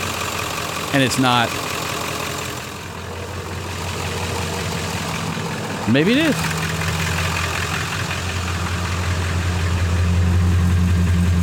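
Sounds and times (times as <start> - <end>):
straight-six engine idling with low rumbling exhaust note: 0.0 - 11.4
speech: 0.9 - 1.7, 5.9 - 6.6.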